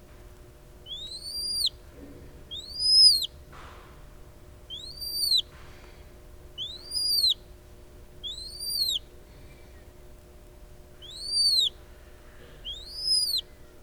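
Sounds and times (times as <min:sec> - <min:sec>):
faint low hum: 0:00.0 - 0:13.8
Noble snipe calling with short arched notes: 0:00.9 - 0:01.7, 0:02.5 - 0:03.3, 0:04.7 - 0:05.4, 0:06.6 - 0:07.4, 0:08.2 - 0:09.0, 0:11.0 - 0:11.7, 0:12.6 - 0:13.4.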